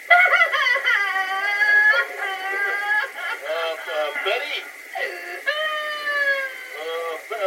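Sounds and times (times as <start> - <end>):
laughter: 0.0 - 7.3
person sobbing: 0.1 - 3.8, 4.9 - 7.0.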